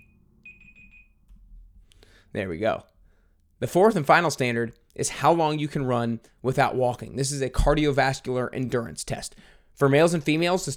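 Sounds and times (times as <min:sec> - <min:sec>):
timer alarm beeping: 0:00.0 - 0:01.2
speech: 0:02.3 - 0:02.9, 0:03.6 - 0:10.7.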